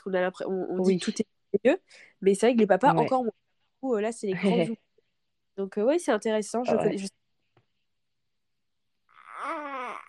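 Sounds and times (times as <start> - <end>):
speech: 0.0 - 4.8, 5.6 - 7.2
baby making a small soft whimpering noise: 9.1 - 10.0.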